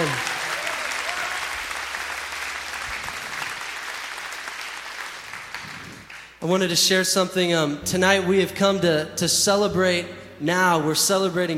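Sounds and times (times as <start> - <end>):
large audience clapping: 0.0 - 6.4
speech: 6.4 - 11.5.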